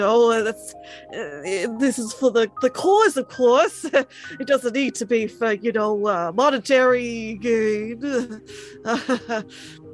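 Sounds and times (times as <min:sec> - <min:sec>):
speech: 0:00.0 - 0:09.8
heavy breathing: 0:09.5 - 0:09.9.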